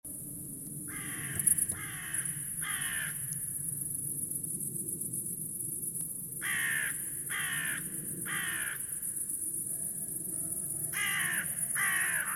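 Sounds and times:
Carrion crow Corvus corone cawing: 0:00.9 - 0:03.2, 0:06.4 - 0:08.9, 0:10.9 - 0:12.3.

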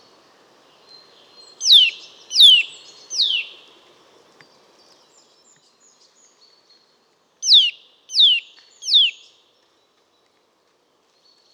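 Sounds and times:
Eurasian nuthatch Sitta europaea giving downslurred calls: 0:01.6 - 0:03.4, 0:07.4 - 0:09.2.

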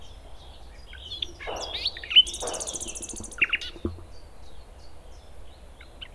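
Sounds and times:
common nightingale Luscinia megarhynchos singing: 0:01.1 - 0:04.6
low hum: 0:01.2 - 0:04.9.

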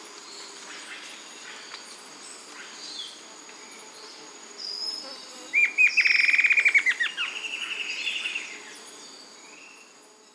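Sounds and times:
bird song with rattling trill: 0:00.2 - 0:10.3.

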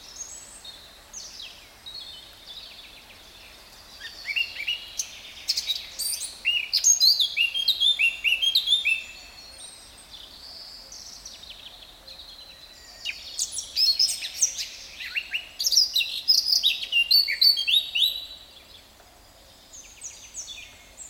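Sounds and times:
Eurasian blackcap Sylvia atricapilla singing: 0:04.0 - 0:09.8, 0:13.1 - 0:18.4.

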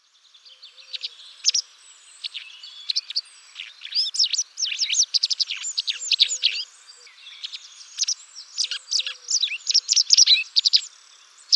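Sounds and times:
white wagtail Motacilla alba calling: 0:02.3 - 0:11.5.

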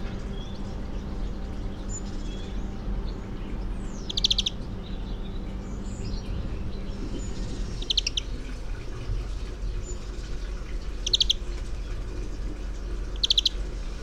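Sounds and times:
European greenfinch Chloris chloris giving chattering trills: 0:00.0 - 0:14.0.

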